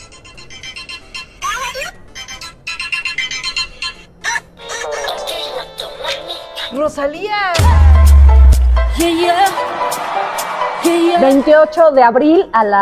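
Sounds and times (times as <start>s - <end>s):
telephone ringtone with bright electronic melody: 0.0s - 6.8s
speech: 6.8s - 8.0s, 9.0s - 12.8s.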